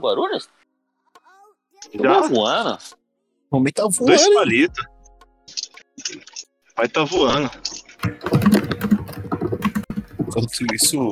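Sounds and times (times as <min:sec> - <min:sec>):
speech: 0:00.0 - 0:00.6, 0:01.8 - 0:04.9, 0:05.5 - 0:08.6, 0:10.3 - 0:11.1
pounding hard on a computer keyboard: 0:08.0 - 0:10.8.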